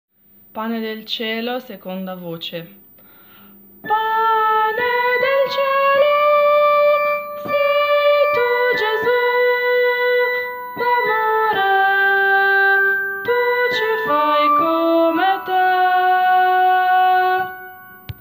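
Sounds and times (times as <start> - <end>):
person singing the second voice part of a hymn: 3.8 - 17.9.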